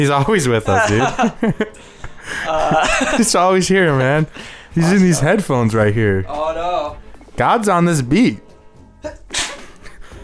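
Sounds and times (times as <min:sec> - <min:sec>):
laughter: 0:00.0 - 0:05.2, 0:09.0 - 0:10.2
speech: 0:00.0 - 0:08.4
person sneezing: 0:09.3 - 0:09.8.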